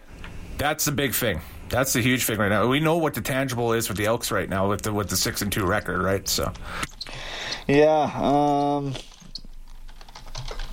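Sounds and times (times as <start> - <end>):
voiced hum: 0.0 - 9.5
speech: 0.6 - 6.8, 7.7 - 9.1
typing on a computer keyboard: 9.1 - 10.7.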